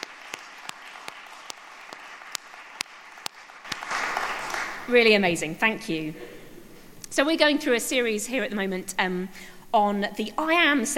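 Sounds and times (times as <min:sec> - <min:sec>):
audience applauding: 0:00.0 - 0:05.0
speech: 0:04.9 - 0:06.3, 0:07.1 - 0:10.9.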